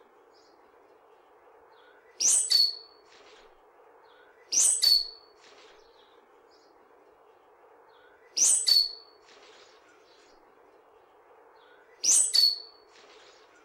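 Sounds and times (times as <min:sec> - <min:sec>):
faint hum: 0:00.0 - 0:13.6
bird song with descending flourishes: 0:01.8 - 0:03.0, 0:04.1 - 0:06.7, 0:07.9 - 0:09.1, 0:11.6 - 0:13.6.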